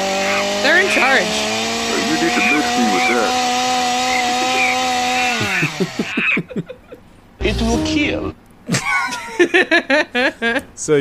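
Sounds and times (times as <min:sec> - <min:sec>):
chainsaw engine droning and sputtering: 0:00.0 - 0:06.2
speech: 0:00.7 - 0:01.5, 0:02.1 - 0:03.5, 0:05.4 - 0:06.8, 0:07.4 - 0:10.9
laughter: 0:01.9 - 0:03.2, 0:04.2 - 0:07.1, 0:08.7 - 0:10.6.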